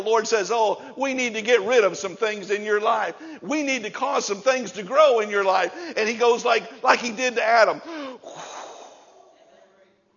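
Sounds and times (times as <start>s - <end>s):
speech: 0.0s - 8.0s
speaker blowing a soft breathy exhale of air: 7.8s - 9.2s.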